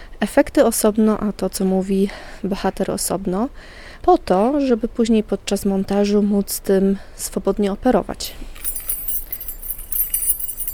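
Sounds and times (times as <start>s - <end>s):
speech: 0.2s - 8.6s
keys jangling as someone opens a garage: 8.6s - 10.7s.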